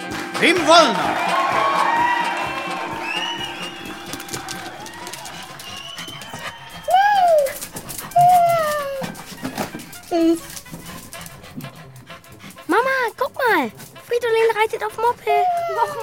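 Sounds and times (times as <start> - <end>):
murmuring voices: 0.0 - 12.8
speech: 0.4 - 1.3, 10.2 - 10.5, 14.6 - 16.0
household bustle: 3.0 - 14.1
dog whimpering: 5.4 - 12.0, 14.9 - 16.0.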